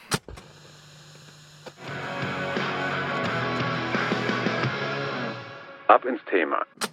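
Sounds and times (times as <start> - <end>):
tape deck mechanical whirring and hiss: 0.0 - 4.5
speech: 5.9 - 6.8.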